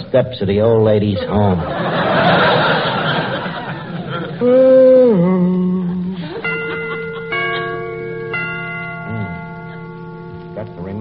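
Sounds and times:
speech: 0.1s - 2.5s, 4.4s - 5.7s
laughter: 1.0s - 4.8s, 5.7s - 8.0s
clock chiming the hour with bell-like tones: 6.3s - 11.0s.

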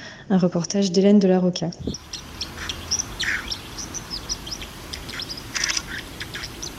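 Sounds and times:
speech: 0.3s - 2.3s
steady low rushing background: 1.8s - 6.7s
white-throated dipper calling in high-pitched chirps: 1.8s - 6.7s.

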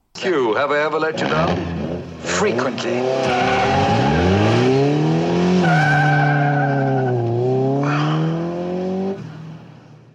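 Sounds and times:
speech: 0.2s - 4.4s
Lotus Esprit sports car accelerating in first gear at full throttle: 1.1s - 10.1s
sports car tires squealing: 1.2s - 8.5s.

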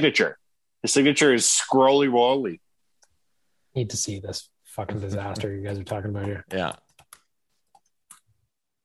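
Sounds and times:
speech: 0.0s - 2.6s, 3.7s - 6.8s
sharp computer clicks while searching: 6.2s - 8.3s.

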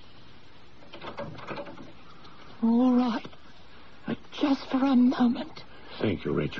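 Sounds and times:
door opening and closing: 0.8s - 2.0s
speech: 2.6s - 3.3s, 4.5s - 6.5s.

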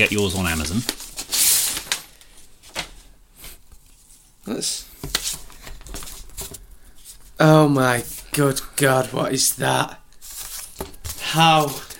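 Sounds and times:
speech: 0.0s - 1.0s, 4.4s - 5.4s, 7.4s - 10.0s, 11.3s - 11.9s
paper handling noise: 0.0s - 3.1s, 5.0s - 7.3s, 10.2s - 11.9s.

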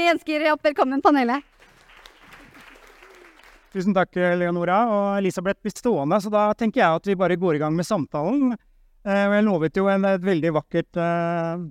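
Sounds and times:
speech: 0.0s - 1.5s, 3.7s - 11.6s
audience applauding: 1.4s - 3.9s.

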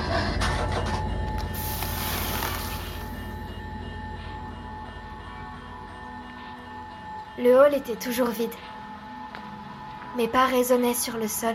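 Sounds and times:
harsh metallic scraping of toy train derailing: 0.0s - 8.2s
speech: 7.4s - 8.7s, 10.2s - 11.5s.

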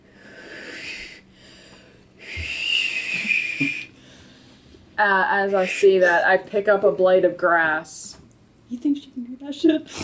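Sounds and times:
person straining to whistle with breathy failed whistle: 2.2s - 3.9s
speech: 5.0s - 8.0s, 8.7s - 10.0s.

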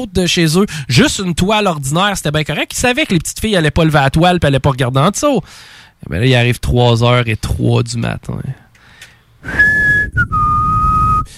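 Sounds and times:
speech: 0.0s - 8.6s, 9.4s - 10.4s
odd whistling in two long steady tones: 9.4s - 11.3s.

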